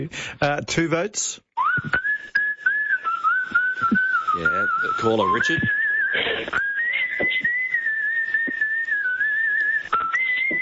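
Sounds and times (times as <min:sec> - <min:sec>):
speech: 0:00.0 - 0:02.4, 0:03.8 - 0:06.6
person whistling a tune: 0:01.6 - 0:10.6.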